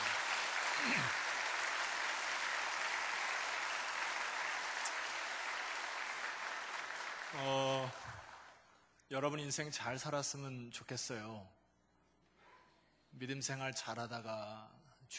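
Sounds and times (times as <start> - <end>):
audience applause: 0.0 - 8.7
speech: 7.3 - 8.2, 9.1 - 11.6, 13.1 - 15.1.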